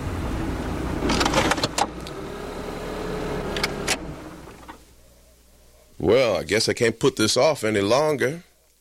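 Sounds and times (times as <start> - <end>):
car engine with hitched trailer rumbling on a cold day: 0.0 - 5.6
speech: 6.0 - 8.5.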